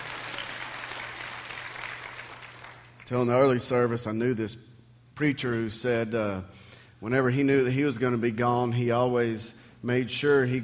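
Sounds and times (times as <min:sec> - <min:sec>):
congregation applauding: 0:00.0 - 0:03.0
speech: 0:03.1 - 0:10.6.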